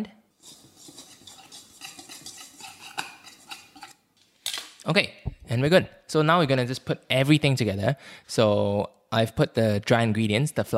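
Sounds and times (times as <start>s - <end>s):
utensil stirring egg and milk together in a bowl: 0.3s - 4.1s
speech: 4.8s - 10.7s.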